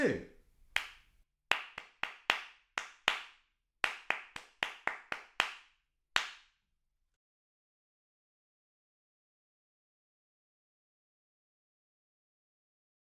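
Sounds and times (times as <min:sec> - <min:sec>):
speech: 0:00.0 - 0:00.3
hand claps beating a syncopated rhythm: 0:00.7 - 0:06.5.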